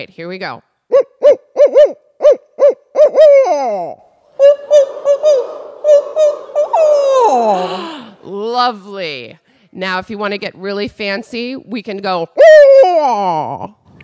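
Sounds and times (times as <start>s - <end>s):
speech: 0.0s - 2.0s, 3.4s - 13.8s
leader imitating barred owl hoots: 0.9s - 8.5s, 12.4s - 13.7s.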